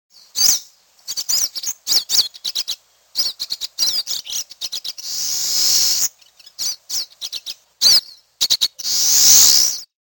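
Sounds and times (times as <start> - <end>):
Eurasian siskin twittering chirps: 0.1 - 9.9
Eurasian siskin harsh hissing notes: 5.0 - 6.1, 8.8 - 9.9.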